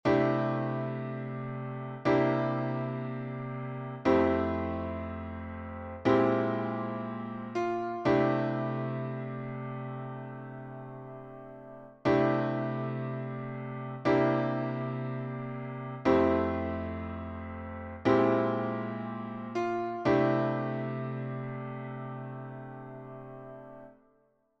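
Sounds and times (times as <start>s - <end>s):
gospel piano IV bVII I cadence: 0.0s - 23.9s.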